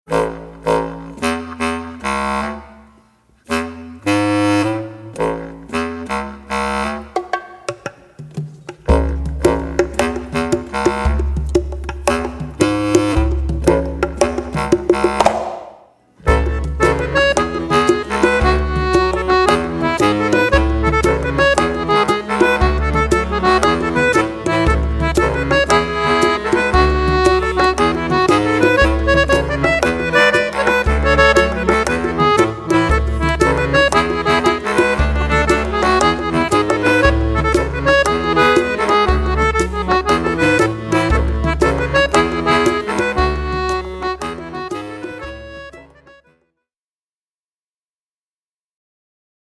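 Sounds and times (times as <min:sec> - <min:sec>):
bass clarinet: 0:00.1 - 0:46.3.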